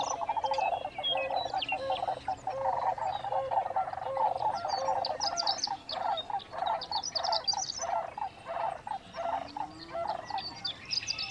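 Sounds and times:
Sandhill Cranes giving rolling rattling calls in a marsh at dawn: 0:00.0 - 0:11.2.

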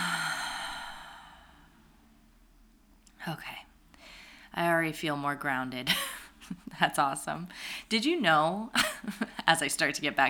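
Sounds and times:
deep exhale through the mouth during a guided breathing exercise: 0:00.0 - 0:01.8
speech: 0:03.2 - 0:03.7, 0:04.6 - 0:10.2.

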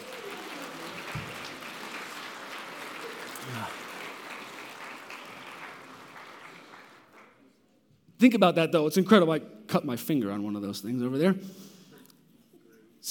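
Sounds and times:
crowd applauding: 0:00.0 - 0:07.5
speech: 0:03.5 - 0:03.8, 0:08.2 - 0:11.7.

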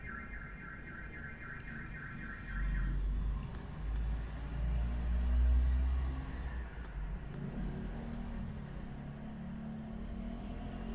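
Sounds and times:
car alarm warbling: 0:00.0 - 0:03.0
steady low rumble of traffic: 0:01.3 - 0:10.9
sharp clicks: 0:03.3 - 0:05.0, 0:06.8 - 0:08.4.

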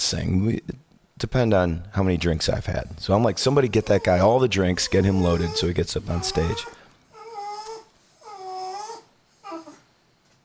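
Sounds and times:
speech: 0:00.1 - 0:06.8
dog whining in high-pitched cries: 0:03.6 - 0:09.9.

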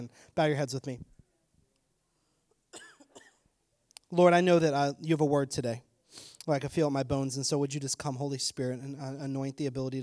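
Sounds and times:
speech: 0:00.0 - 0:01.1, 0:04.1 - 0:10.0
harsh coughs: 0:02.7 - 0:03.5.

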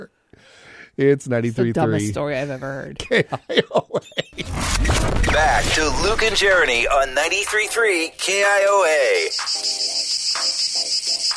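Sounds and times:
speech: 0:00.0 - 0:09.9
cicadas buzzing in Iowa: 0:09.0 - 0:11.3.

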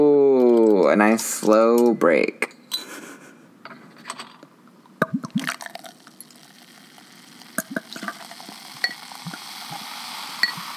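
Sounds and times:
speech: 0:01.0 - 0:02.6
sharp glassy clinks: 0:02.6 - 0:02.9
soda poured into a glass with fizzing hiss: 0:05.2 - 0:10.7.

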